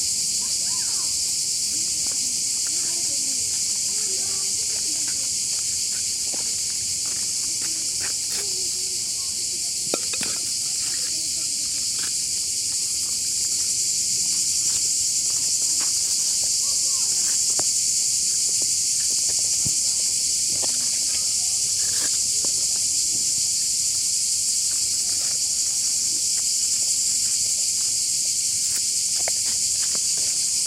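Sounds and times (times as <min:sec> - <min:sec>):
numerous cicadas buzzing at Liqeni Artificial I Tiranes in Albania: 0:00.0 - 0:30.6
voices: 0:00.4 - 0:13.2, 0:15.3 - 0:17.6, 0:19.3 - 0:22.2.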